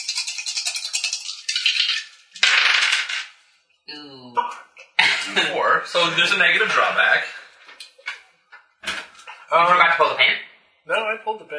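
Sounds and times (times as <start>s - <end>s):
dice rattling as if shaken in a cup: 0.0s - 3.4s
dice clattering across a hard table: 1.7s - 3.4s
speech: 3.9s - 7.4s, 9.5s - 11.5s
laughter: 5.0s - 7.3s.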